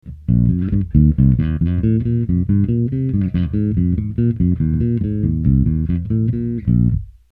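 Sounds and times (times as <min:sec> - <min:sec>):
fingered bass guitar through direct input: 0:00.0 - 0:07.3.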